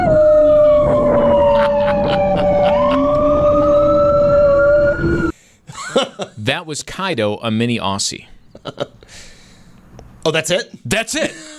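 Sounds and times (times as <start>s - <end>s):
dog howling: 0.0s - 5.3s
ambulance siren wailing: 0.0s - 5.4s
laughter: 1.2s - 3.3s, 5.7s - 6.4s
speech: 6.4s - 9.2s, 10.2s - 11.4s.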